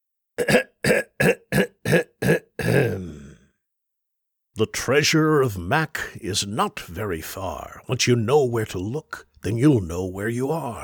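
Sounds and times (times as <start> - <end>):
speech: 0.4 - 0.7, 4.6 - 10.8
man clearing his throat: 0.4 - 3.5.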